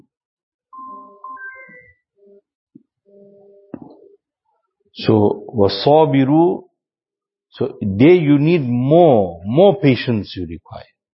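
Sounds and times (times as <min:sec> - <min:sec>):
mobile phone melodic ringtone: 0:00.8 - 0:02.0
speech: 0:05.0 - 0:06.7, 0:07.5 - 0:10.9.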